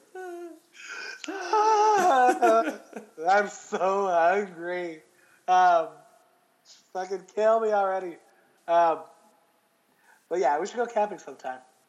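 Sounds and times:
person imitating asthmatic wheezy heavy breathing: 0:00.0 - 0:02.9
laughter: 0:01.2 - 0:04.0
speech: 0:02.4 - 0:06.0, 0:06.7 - 0:09.1, 0:10.3 - 0:11.7.

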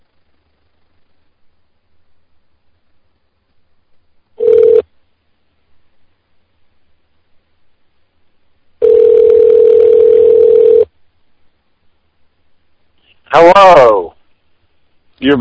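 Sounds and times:
hissy telephone line tone after call drops: 0:04.4 - 0:04.8, 0:08.8 - 0:10.9
speech: 0:15.2 - 0:15.4.

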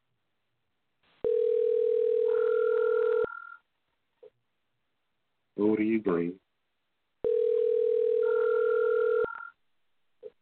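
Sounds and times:
phone line ringing a caller for a live on-air call: 0:01.2 - 0:03.4, 0:07.2 - 0:09.5
speech: 0:05.7 - 0:06.4.

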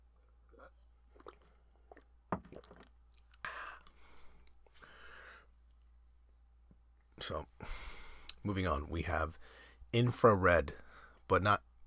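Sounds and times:
slurping and swallowing water: 0:00.4 - 0:03.4
person sipping water: 0:00.4 - 0:05.0
speech: 0:07.3 - 0:07.8, 0:08.4 - 0:11.6.

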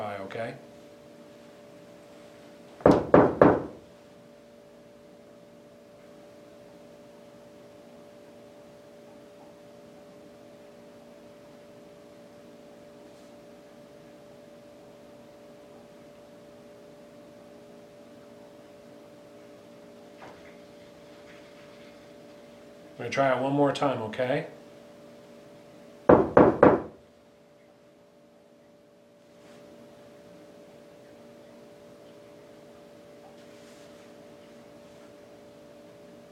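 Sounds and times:
faint steady hum: 0:00.0 - 0:36.3
speech: 0:00.4 - 0:00.7, 0:23.0 - 0:24.6
person knocking on a wall: 0:02.8 - 0:03.8, 0:26.1 - 0:27.0.

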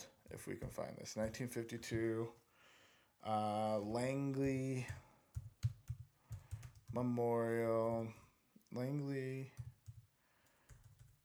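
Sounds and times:
speech: 0:00.3 - 0:02.4, 0:03.2 - 0:05.1, 0:06.9 - 0:09.6
soft typing on a computer keyboard: 0:03.8 - 0:07.2, 0:09.5 - 0:11.2.

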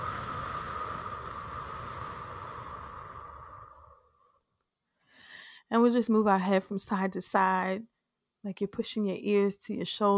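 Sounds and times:
long slow exhale during a guided breathing exercise: 0:00.0 - 0:04.4, 0:05.0 - 0:05.7
speech: 0:05.7 - 0:10.1.

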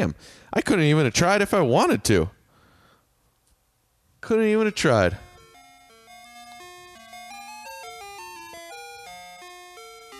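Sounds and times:
speech: 0:00.0 - 0:02.4, 0:04.2 - 0:05.3
bright tinkling ice cream truck jingle: 0:04.3 - 0:10.1.

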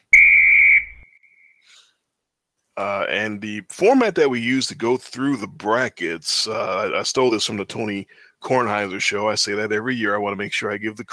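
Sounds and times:
sharp whistle blast: 0:00.0 - 0:01.8
speech: 0:02.8 - 0:11.1.

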